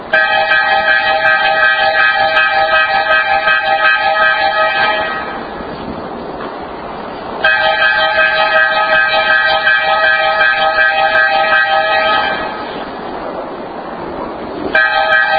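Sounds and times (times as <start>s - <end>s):
emergency alert horn pattern: 0.1s - 5.7s, 7.5s - 12.9s, 14.7s - 15.3s.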